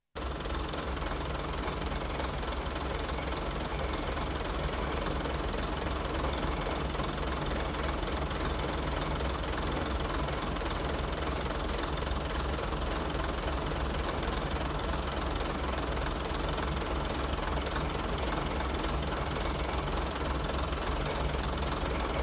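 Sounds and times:
local diesel railcar: 0.2s - 22.2s.

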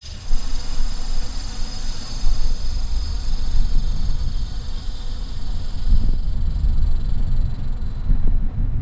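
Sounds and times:
eerie ambience: 0.0s - 8.7s.

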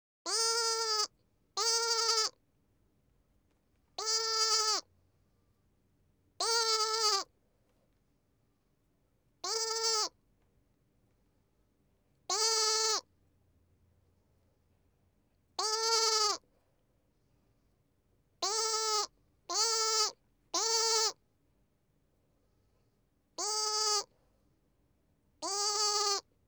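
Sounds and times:
lamb: 0.3s - 2.4s, 4.0s - 4.9s, 6.4s - 7.3s, 9.4s - 10.2s, 12.3s - 13.1s, 15.6s - 16.5s, 18.4s - 21.2s, 23.4s - 24.1s, 25.4s - 26.3s.

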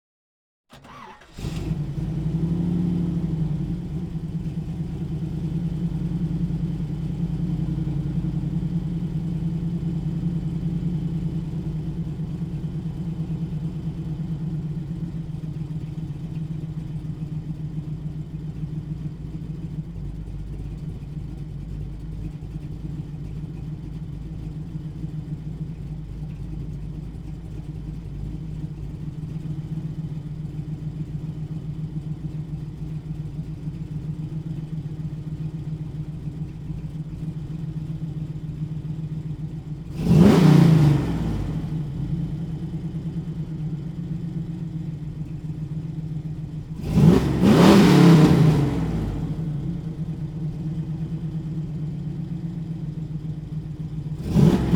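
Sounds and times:
1969 Pontiac Firebird engine blips: 0.7s - 15.1s, 39.8s - 45.6s, 46.2s - 54.7s
1969 Pontiac Firebird engine starting: 0.7s - 54.7s.

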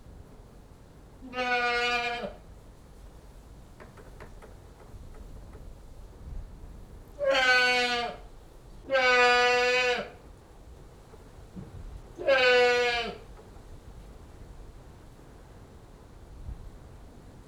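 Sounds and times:
goat bleating: 1.3s - 2.4s, 7.2s - 8.2s, 8.9s - 10.2s, 12.2s - 13.2s.

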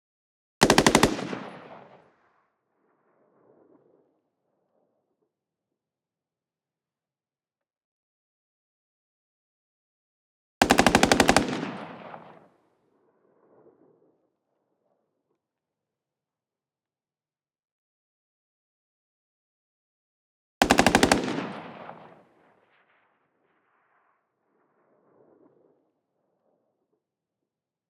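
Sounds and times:
XM8 battle rifle automatic fire, distant exterior: 0.6s - 2.3s, 10.6s - 12.5s, 20.6s - 23.0s.

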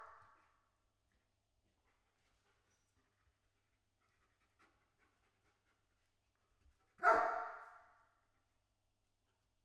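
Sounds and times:
German Shepherd dog barking with deep echoing bark: 7.0s - 8.0s.

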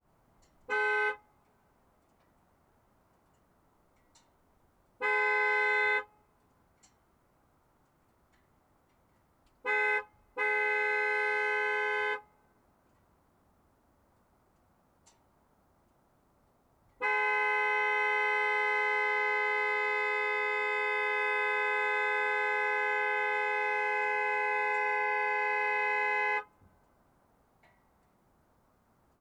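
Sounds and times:
2014 Dodge Ram 1500 HEMI horn honking: 0.7s - 1.2s, 5.0s - 6.1s, 9.7s - 12.3s, 17.0s - 26.6s.

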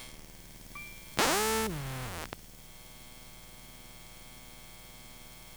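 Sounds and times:
electromagnetic hiss from a game console: 0.8s - 2.3s.

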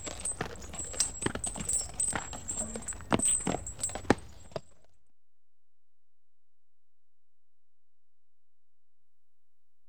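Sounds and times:
bright metallic jingling of horse harness: 0.0s - 4.8s
horse walking in harness with clopping hoof strikes: 0.0s - 4.8s.

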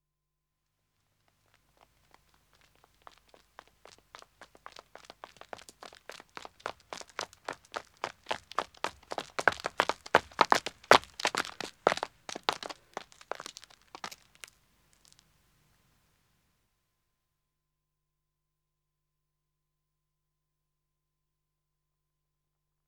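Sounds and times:
man running on a country road: 1.4s - 15.2s.

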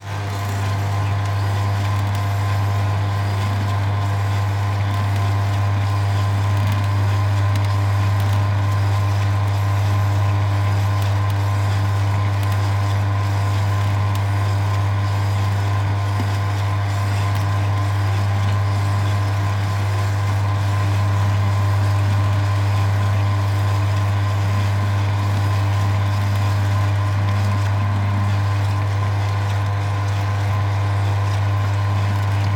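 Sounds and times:
juice machine base running: 0.0s - 32.5s.

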